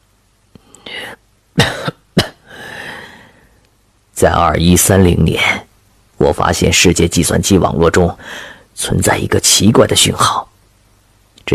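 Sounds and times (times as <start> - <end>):
person coughing: 1.6 - 2.9
breathy inhales: 2.4 - 3.6, 8.2 - 8.7
speech: 4.2 - 10.5.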